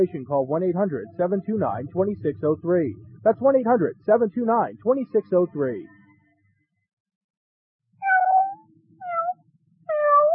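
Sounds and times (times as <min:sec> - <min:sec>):
speech: 0:00.0 - 0:06.0
cat meowing: 0:08.0 - 0:10.3.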